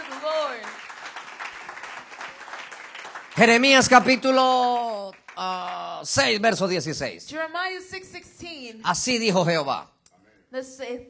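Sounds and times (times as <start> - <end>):
crowd applauding: 0.0 - 6.6
speech: 3.4 - 9.9, 10.5 - 11.0.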